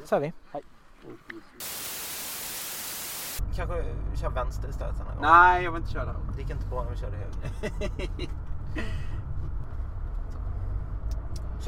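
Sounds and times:
speech: 0.1 - 1.9, 3.6 - 9.2
road and engine rumble inside a moving car: 3.4 - 11.6
laughter: 7.4 - 9.0.

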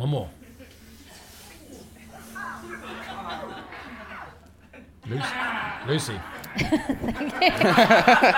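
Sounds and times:
speech: 0.0 - 0.4, 5.1 - 8.3
people chuckling: 0.4 - 8.3
crowd yelping imitating someone cutting themselves shaving: 2.2 - 6.9.

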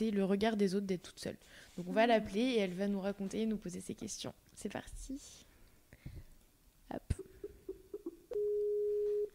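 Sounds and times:
speech: 0.0 - 6.2, 6.9 - 7.2
Skype call ringing tones: 8.0 - 9.3.

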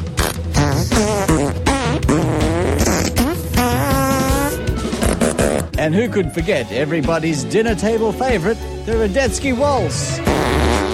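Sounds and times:
fart noises playing a galloping classical overture melody: 0.0 - 5.8, 10.2 - 10.9
speech: 5.9 - 10.7.

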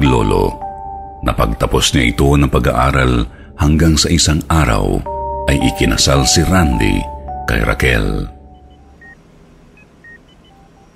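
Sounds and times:
low steady hum: 0.0 - 10.9
speech: 0.2 - 0.6, 1.2 - 8.4
cellphone text message notification tone: 5.1 - 9.2.

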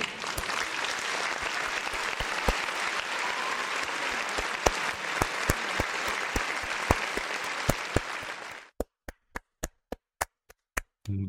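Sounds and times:
crowd applauding to welcome a returning guest: 0.0 - 8.7
single sharp claps from one person: 0.0 - 8.7.

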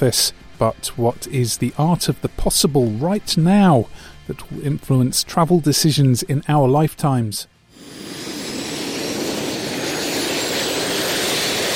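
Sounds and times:
speech: 0.0 - 7.5
jet suit engines strapped to a person's arms roaring: 7.7 - 11.7.

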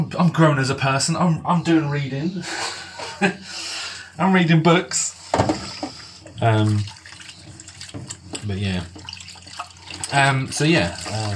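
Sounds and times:
speech: 0.0 - 5.6, 6.4 - 7.0, 8.4 - 9.0, 10.1 - 11.3
tap water running at a kitchen sink while dishes are washed up: 5.4 - 11.3.

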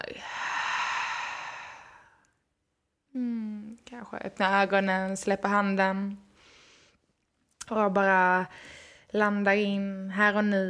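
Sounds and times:
long audible exhale of breath: 0.2 - 2.3
speech: 4.0 - 6.2, 7.7 - 10.6.

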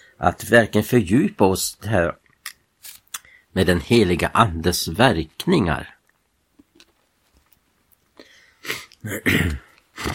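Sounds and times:
breathing: 0.0 - 0.2, 3.2 - 3.5, 8.2 - 9.0
speech: 0.2 - 2.2, 3.6 - 6.0, 9.0 - 10.1
person coughing in a coughing fit during cold season: 8.7 - 10.1.

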